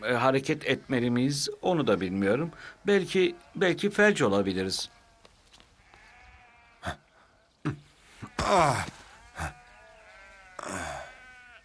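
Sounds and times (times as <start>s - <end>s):
speech: 0.0s - 5.0s, 8.4s - 9.6s
sheep bleating: 2.2s - 7.1s, 8.0s - 11.6s.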